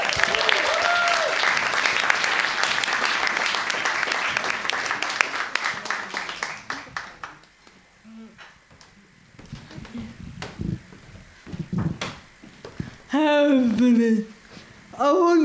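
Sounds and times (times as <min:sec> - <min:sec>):
crowd applauding loudly: 0:00.0 - 0:07.6
faint shuffling: 0:06.9 - 0:15.3.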